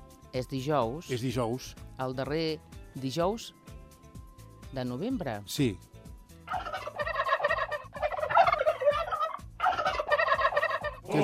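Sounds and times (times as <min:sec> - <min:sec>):
speech: 0:00.3 - 0:03.7, 0:04.7 - 0:05.9
turkey gobbling: 0:06.5 - 0:11.1.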